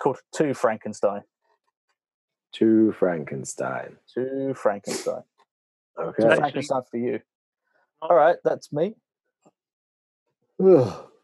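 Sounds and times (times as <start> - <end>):
speech: 0.0 - 1.3, 2.5 - 5.3, 6.0 - 7.3, 8.0 - 9.0, 10.6 - 11.1
person yawning: 10.6 - 11.1.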